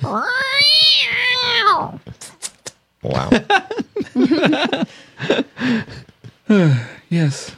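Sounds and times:
cat yowling: 0:00.0 - 0:02.0
speech: 0:00.1 - 0:02.1, 0:03.0 - 0:05.8, 0:06.5 - 0:07.5
laughter: 0:03.2 - 0:06.4.

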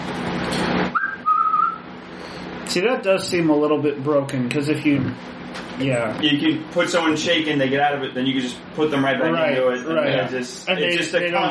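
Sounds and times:
person whistling a short high-pitched note: 0:00.9 - 0:01.8
speech: 0:02.8 - 0:11.4.

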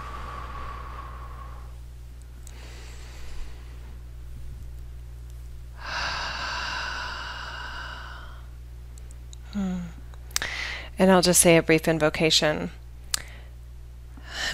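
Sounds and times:
deep breathing during a guided relaxation: 0:00.0 - 0:01.8, 0:02.4 - 0:04.1, 0:05.8 - 0:08.5, 0:09.5 - 0:11.0
steady low hum: 0:00.0 - 0:14.5
speech: 0:11.0 - 0:12.8.

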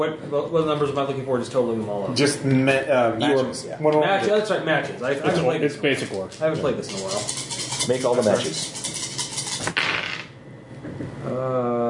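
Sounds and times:
speech: 0:00.0 - 0:08.8
dice rattling and clattering onto a hard surface during a dice game: 0:09.6 - 0:10.3.

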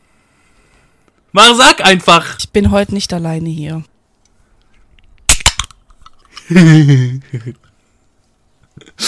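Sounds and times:
speech: 0:01.3 - 0:03.9, 0:06.5 - 0:07.7, 0:08.8 - 0:09.0
energy drink can snapped open: 0:05.3 - 0:06.3
person laughing or exclaiming: 0:06.4 - 0:07.7.

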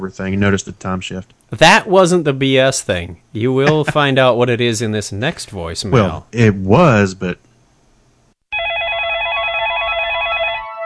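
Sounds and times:
speech: 0:00.0 - 0:07.5
faint noise: 0:00.0 - 0:08.4
electronic phone ring with rapid warbling trill: 0:08.5 - 0:10.8.

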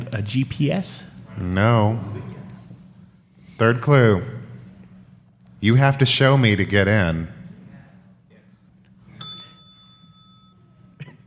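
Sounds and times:
low steady hum: 0:00.0 - 0:11.2
speech: 0:00.1 - 0:02.4, 0:03.6 - 0:04.4, 0:05.6 - 0:07.4
game show ring-in bell ding: 0:09.2 - 0:11.0.

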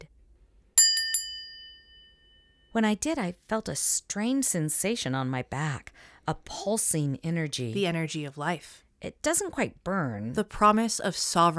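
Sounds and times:
small crystal bell ringing: 0:00.8 - 0:02.8
speech: 0:02.8 - 0:11.5.

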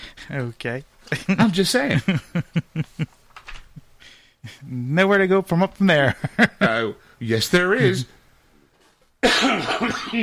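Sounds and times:
speech: 0:00.3 - 0:03.2, 0:04.4 - 0:08.2, 0:09.2 - 0:10.2
harsh raspy hacking coughing: 0:09.2 - 0:10.2.

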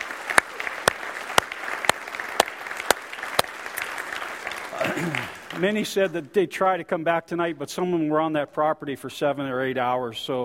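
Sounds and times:
crowd applauding: 0:00.0 - 0:06.2
louder claps at a regular beat: 0:00.0 - 0:06.2
speech: 0:05.0 - 0:10.4.

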